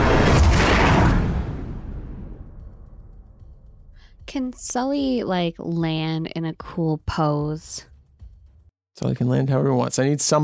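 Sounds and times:
crashing explosion sound effect: 0.0 - 3.3
speech: 4.3 - 7.9, 9.0 - 10.4.

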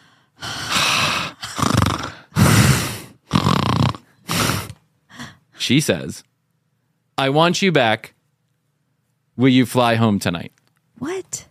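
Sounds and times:
voice imitating heavy raspy breathing of a woman on a phone line: 0.4 - 5.4
speech: 5.7 - 6.3, 7.2 - 8.2, 9.4 - 11.4.

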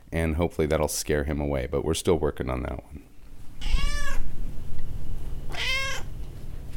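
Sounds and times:
speech: 0.1 - 3.9
cat meowing: 3.6 - 4.3, 5.5 - 6.2.

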